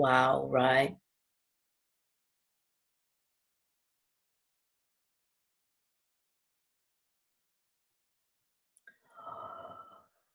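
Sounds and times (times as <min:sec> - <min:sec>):
speech: 0:00.0 - 0:01.0
long breathy yawn: 0:09.1 - 0:10.2.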